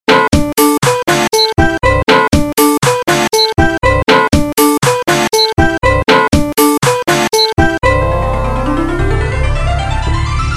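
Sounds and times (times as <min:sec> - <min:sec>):
funky funny song: 0:00.1 - 0:10.4.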